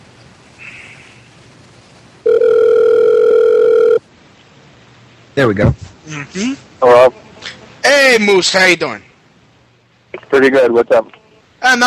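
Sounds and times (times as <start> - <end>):
telephone dial tone: 2.3 - 4.0
speech: 5.4 - 9.1, 10.3 - 11.8.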